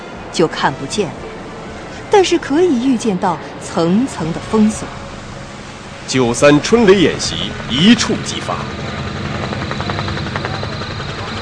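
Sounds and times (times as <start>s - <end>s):
speech: 0.4s - 1.3s, 2.1s - 5.0s, 6.1s - 8.8s
helicopter rotor and engine droning while landing at a temporary hilltop airfield: 3.4s - 11.4s.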